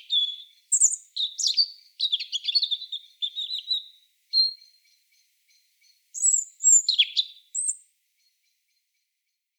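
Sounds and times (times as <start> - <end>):
European robin Erithacus rubecula song: 0.0 - 5.0, 6.1 - 7.9.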